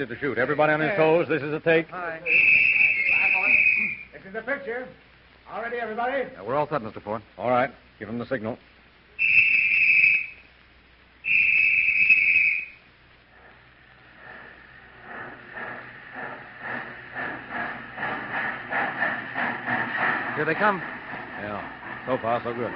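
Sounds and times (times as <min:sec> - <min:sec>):
speech: 0:00.0 - 0:02.7, 0:03.8 - 0:08.7, 0:20.4 - 0:22.7
approaching train chugging: 0:00.0 - 0:06.4, 0:09.1 - 0:10.6, 0:11.2 - 0:22.7
train whistle blasts: 0:02.2 - 0:04.2, 0:09.2 - 0:10.5, 0:11.2 - 0:12.9.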